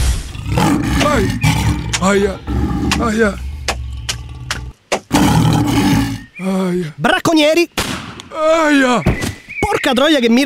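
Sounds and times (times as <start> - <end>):
person imitating a lion in heat roaring: 0.4 - 6.2
speech: 2.0 - 3.5, 6.4 - 10.4.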